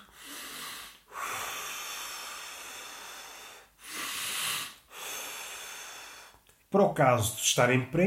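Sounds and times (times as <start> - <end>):
slow deep breathing exercise: 0.0 - 6.5
speech: 6.7 - 8.0.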